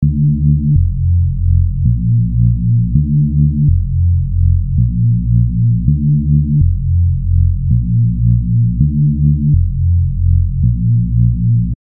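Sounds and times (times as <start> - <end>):
detuned bass synth: 0.0 - 11.8.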